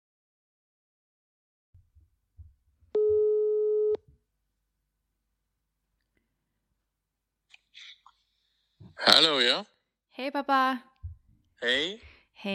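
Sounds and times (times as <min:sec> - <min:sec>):
telephone ringback tone while phoning someone: 0:03.0 - 0:04.0
speech: 0:09.0 - 0:10.9, 0:11.6 - 0:12.5.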